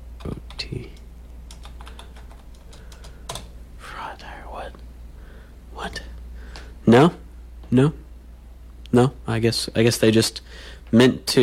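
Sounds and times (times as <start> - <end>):
low steady hum: 0.0 - 11.4
typing on a computer keyboard during an online search: 1.5 - 3.5
soft breathy noise: 1.8 - 6.9, 10.4 - 11.0
speech: 6.9 - 8.0, 8.9 - 11.4.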